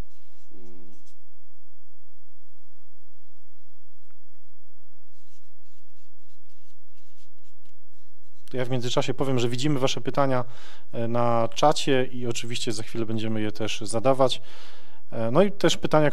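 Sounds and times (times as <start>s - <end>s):
pens writing on paper cards: 0.0s - 1.2s, 5.1s - 8.5s
low electrical hum: 0.0s - 16.1s
faint paper rustles: 5.1s - 8.5s
speech: 8.5s - 16.1s.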